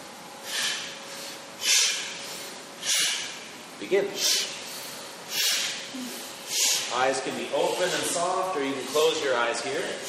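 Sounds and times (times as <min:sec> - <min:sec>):
sharp forceful exhales through the nose during a twisting breathwork exercise: 0:00.4 - 0:03.5, 0:04.2 - 0:07.0
speech: 0:03.8 - 0:04.4, 0:07.0 - 0:10.0.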